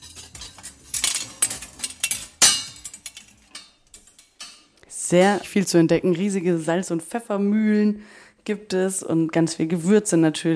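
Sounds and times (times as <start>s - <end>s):
metal utensil clang: 0.0s - 4.7s
metal spoons and ladles clinking in a kitchen: 0.0s - 5.6s
speech: 5.1s - 10.5s.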